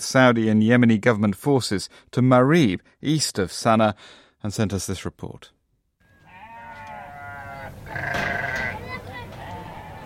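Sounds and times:
speech: 0.1s - 5.6s
goats and sheep bleating: 6.1s - 10.0s
steady outdoor rumble: 7.3s - 10.0s.

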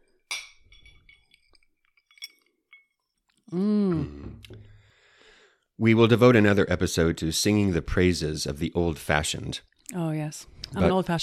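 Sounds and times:
glasses clinking in a toast: 0.2s - 3.3s
speech: 3.5s - 3.8s, 5.8s - 11.2s
person's drawn-out pleased vocal murmur: 3.5s - 4.5s.

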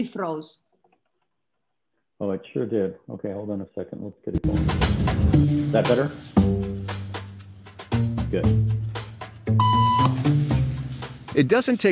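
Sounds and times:
speech: 0.0s - 0.6s, 2.2s - 6.7s, 8.3s - 8.7s, 11.4s - 11.9s
electronic beep tone: 9.6s - 10.2s.

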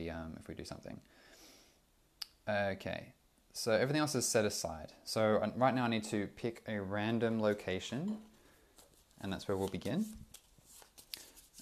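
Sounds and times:
speech: 0.0s - 1.5s, 2.4s - 8.3s, 9.2s - 10.2s
playing cards shuffling: 8.8s - 11.6s.

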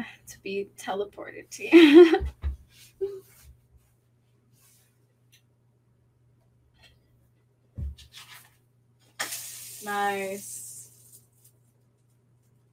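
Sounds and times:
speech: 0.3s - 3.3s, 9.8s - 10.6s
pancake batter sizzling on a hot pan: 9.1s - 11.2s.

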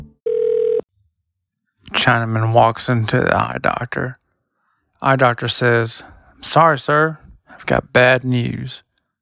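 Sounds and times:
loud electronic telephone tone with shifting pitches: 0.3s - 0.9s
speech: 2.0s - 4.2s, 5.0s - 8.9s.

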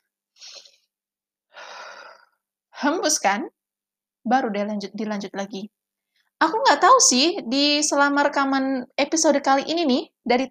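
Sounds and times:
person breathing in close to the microphone: 1.5s - 2.4s
speech: 2.8s - 3.6s, 4.2s - 5.8s, 6.4s - 10.4s.

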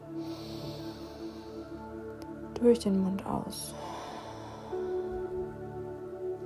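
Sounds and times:
deep inhale through the nose during a guided breathing exercise: 0.0s - 2.3s, 3.7s - 6.2s
soft sustained tones: 0.0s - 6.4s
speech: 2.6s - 3.9s.

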